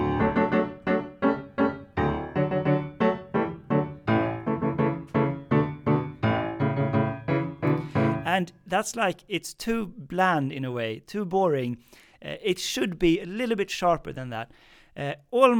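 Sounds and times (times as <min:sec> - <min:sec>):
piano playing a Polonaise rhythm in a strict metronomic way: 0:00.0 - 0:08.5
speech: 0:08.3 - 0:15.5.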